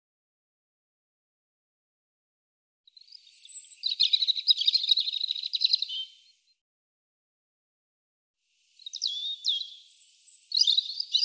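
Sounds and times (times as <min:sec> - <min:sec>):
European robin singing: 0:02.9 - 0:06.4, 0:08.8 - 0:11.2.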